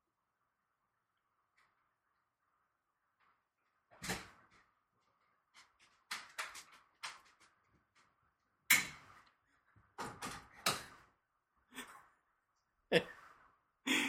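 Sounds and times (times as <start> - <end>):
open door creaking and knocking: 3.9 - 8.1, 9.9 - 11.1.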